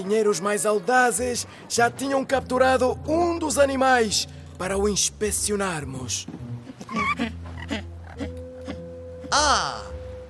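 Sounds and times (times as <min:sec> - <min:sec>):
speech: 0:00.0 - 0:06.4
Magellanic penguin braying calls: 0:06.7 - 0:09.9.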